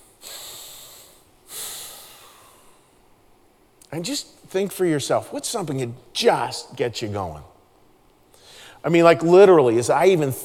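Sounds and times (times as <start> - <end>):
deep breath: 0.0 - 3.0, 8.3 - 8.8
speech: 3.9 - 7.5, 8.8 - 10.4.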